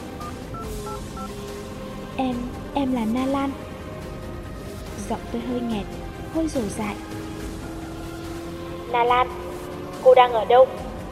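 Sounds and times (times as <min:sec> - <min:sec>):
mobile phone keypad tones as a number is dialed: 0:00.2 - 0:01.3
speech: 0:02.2 - 0:03.7, 0:05.1 - 0:07.2, 0:08.9 - 0:09.4, 0:10.0 - 0:10.8.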